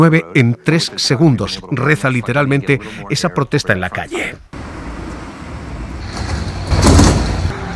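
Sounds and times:
speech: 0.0s - 4.8s
steady outdoor street rumble: 4.4s - 7.7s
broad rattling of a bus shelter panel: 6.0s - 7.5s
metal bus shelter advertising panel sliding open and shut and clunking: 6.0s - 7.5s.

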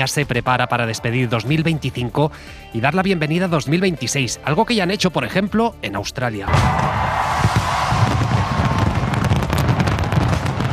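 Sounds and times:
speech: 0.0s - 7.1s
fireworks crackling and booming over Sydney: 6.5s - 10.7s.

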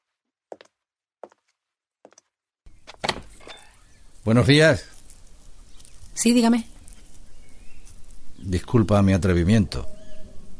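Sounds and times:
outside noise: 2.7s - 10.5s
front door opening: 2.8s - 3.9s
speech: 4.2s - 4.9s, 6.2s - 6.7s, 8.5s - 10.0s.

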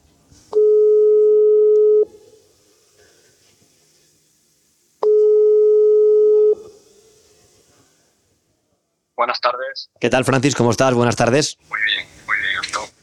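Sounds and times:
quiet hiss: 0.0s - 13.0s
WhatsApp call ringing tone on speakerphone: 0.6s - 2.1s, 5.1s - 6.6s
speech: 9.4s - 12.0s.

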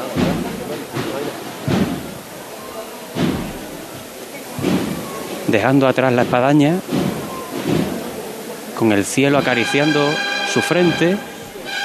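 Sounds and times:
murmur of voices in a procession: 0.0s - 11.8s
procession drum beating a mournful rhythm: 0.0s - 11.8s
speech: 5.5s - 7.0s, 8.8s - 11.3s.

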